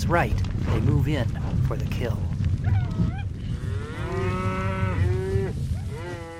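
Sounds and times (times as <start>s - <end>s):
speech: 0.0s - 2.8s
steady low rumble of the fleeing cattle herd: 0.0s - 6.3s
cattle mooing loudly during a stampede: 2.7s - 6.3s.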